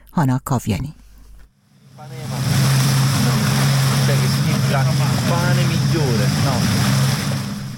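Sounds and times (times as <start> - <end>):
speech: 0.2 - 1.0, 4.7 - 7.0
low engine hum: 1.6 - 7.7
surf washing on the shore of a small Greek island in summer: 1.8 - 7.7
tourists swimming: 1.9 - 7.7.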